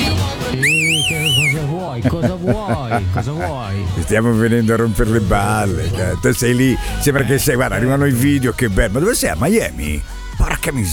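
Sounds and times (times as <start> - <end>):
laughter: 0.0 - 8.0
high call whistle warbling: 0.6 - 1.7
speech: 1.6 - 10.9.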